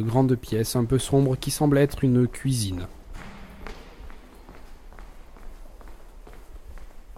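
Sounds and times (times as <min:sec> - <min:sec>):
speech: 0:00.0 - 0:03.0
footsteps of a person walking with crisp heel strikes: 0:02.8 - 0:07.1.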